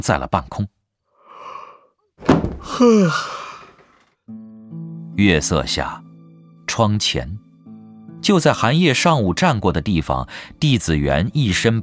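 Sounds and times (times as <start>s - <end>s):
speech: 0.0s - 0.8s, 2.2s - 3.4s, 5.2s - 6.0s, 6.7s - 7.4s, 8.2s - 11.8s
heavy palace door thump: 2.2s - 2.9s
heavy palace door pushed open creaking: 2.2s - 4.2s.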